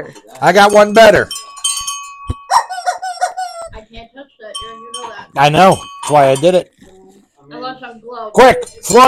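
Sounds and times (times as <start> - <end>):
speech: 0.0 - 1.4, 5.4 - 6.7, 8.1 - 9.0
small handheld bell ringing: 0.4 - 3.6, 4.5 - 6.8.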